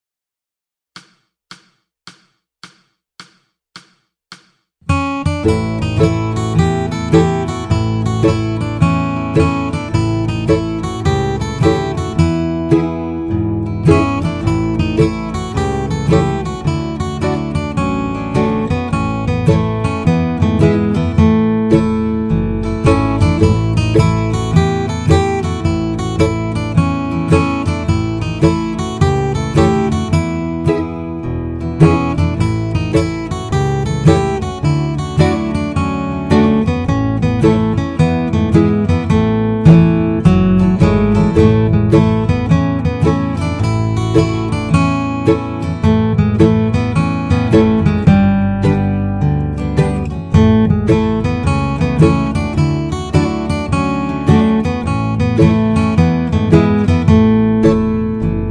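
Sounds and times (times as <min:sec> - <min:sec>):
slow guitar: 0:04.9 - 0:58.5.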